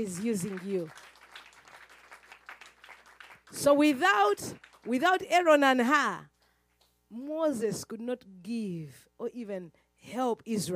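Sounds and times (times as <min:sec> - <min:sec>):
speech: 0:00.0 - 0:01.2, 0:03.5 - 0:06.3, 0:07.1 - 0:10.7
audience clapping during a sermon: 0:00.0 - 0:05.3.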